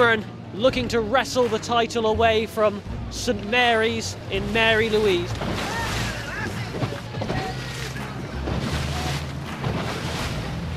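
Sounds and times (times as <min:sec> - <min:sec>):
speech: 0:00.0 - 0:05.8
speedboat engine roaring on open water: 0:03.3 - 0:10.7
rushing water and spray: 0:04.1 - 0:10.7.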